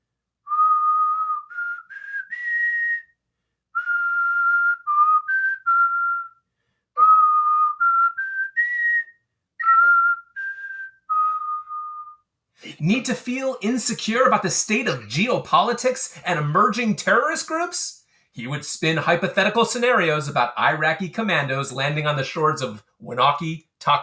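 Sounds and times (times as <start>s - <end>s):
whistled tune played over a camp PA system: 0.4s - 12.3s
speech: 12.8s - 24.0s.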